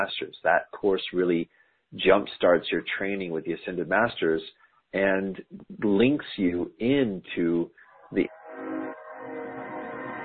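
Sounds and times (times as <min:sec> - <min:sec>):
speech: 0:00.0 - 0:08.8
train horn blast: 0:07.9 - 0:10.2.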